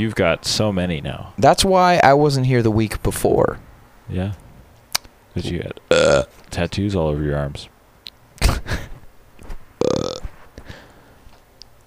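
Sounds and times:
speech: 0.0s - 4.4s, 5.4s - 7.7s
fart: 9.8s - 10.3s.

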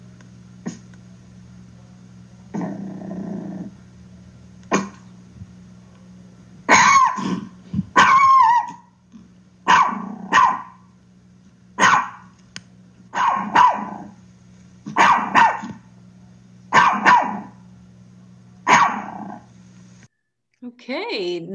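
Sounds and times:
steady low hum: 0.0s - 21.5s
Chihuahua barking: 4.7s - 5.1s, 6.7s - 8.9s, 9.6s - 10.8s, 11.8s - 12.3s, 13.1s - 14.2s, 14.9s - 15.9s, 16.7s - 17.6s, 18.6s - 19.4s
speech: 20.7s - 21.5s.

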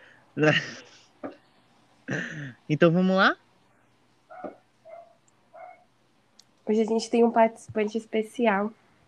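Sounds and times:
low hum: 0.0s - 9.0s
laughter: 0.4s - 0.8s
speech: 0.4s - 0.9s, 2.1s - 3.4s, 6.7s - 8.8s
neighbor's dog barking: 4.3s - 5.9s.

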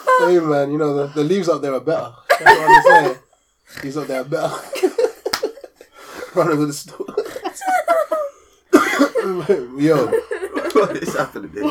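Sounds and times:
speech: 0.2s - 5.0s, 6.3s - 7.7s, 9.2s - 10.2s, 10.8s - 11.6s
laughter: 2.3s - 3.2s, 4.0s - 11.6s
person coughing: 8.7s - 9.7s.

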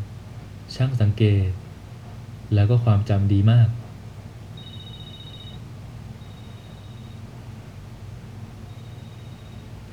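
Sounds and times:
speech: 0.8s - 1.6s, 2.5s - 3.8s
telephone ringing with high electronic bursts: 4.6s - 7.2s.

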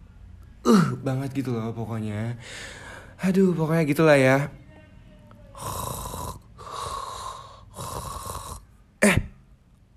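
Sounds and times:
speech: 0.7s - 4.6s
person imitating loud rasping snoring: 5.5s - 9.2s.

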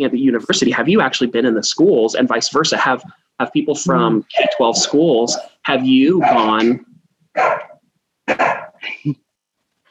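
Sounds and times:
speech: 0.0s - 7.6s, 8.3s - 9.2s
dogs barking: 4.2s - 8.8s
dog whimpery yip: 4.3s - 6.8s, 7.4s - 8.8s.

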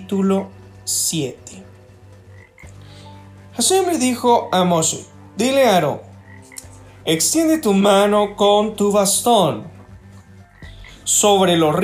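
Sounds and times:
speech: 0.1s - 1.6s, 3.6s - 6.1s, 7.1s - 9.8s, 11.1s - 11.8s
dense chorus of frogs croaking: 1.9s - 7.0s, 10.0s - 11.2s.

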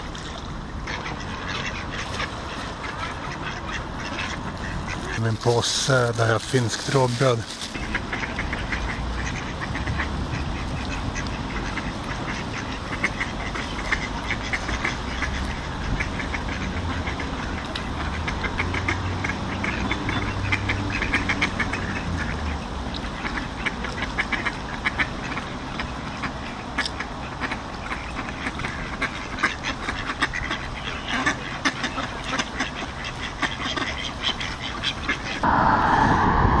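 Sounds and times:
ducks quacking by the water at Norr Mälarstrand: 0.0s - 35.5s
speech: 5.2s - 7.6s
steady loud engine rumble: 35.4s - 36.5s.

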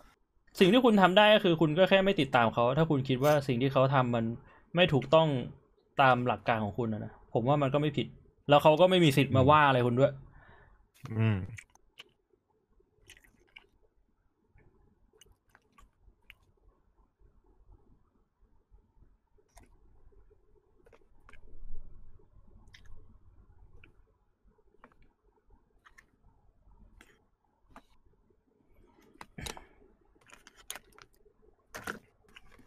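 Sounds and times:
speech: 0.6s - 10.2s, 11.0s - 11.7s
person chewing quietly while eating with wet clicks and squishes: 11.0s - 12.2s, 12.8s - 13.9s, 14.6s - 16.6s, 19.4s - 21.6s, 22.4s - 28.0s, 28.8s - 31.3s, 32.2s - 32.6s.

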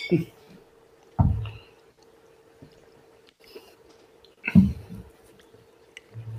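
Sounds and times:
glasses clinking in a toast: 0.0s - 0.3s
faint steady hum: 0.0s - 6.3s.

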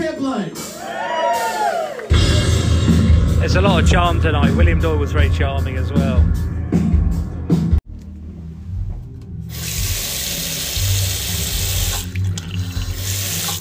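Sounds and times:
speech: 0.1s - 1.2s, 3.5s - 6.4s
low rumble: 2.1s - 9.5s
hand-wash tap on a toilet cistern running: 9.5s - 13.5s.

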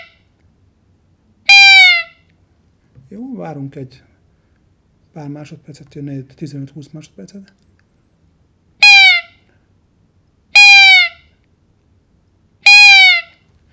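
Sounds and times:
roe deer doe in the rut calling a buck: 1.5s - 2.2s, 10.5s - 11.3s, 12.7s - 13.4s
speech: 3.1s - 4.1s, 5.1s - 7.7s.

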